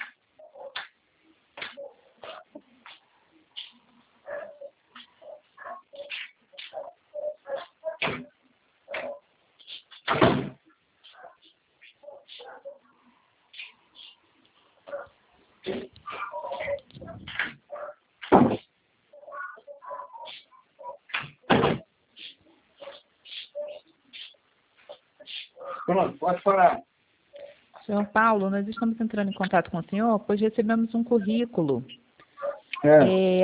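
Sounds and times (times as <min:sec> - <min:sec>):
dogs barking over a telephone line: 0:00.0 - 0:00.9, 0:01.6 - 0:03.0, 0:03.6 - 0:09.3, 0:11.0 - 0:14.2, 0:14.8 - 0:21.2, 0:22.2 - 0:26.2, 0:32.3 - 0:32.8
speech: 0:26.0 - 0:26.9, 0:27.9 - 0:32.0, 0:32.8 - 0:33.4.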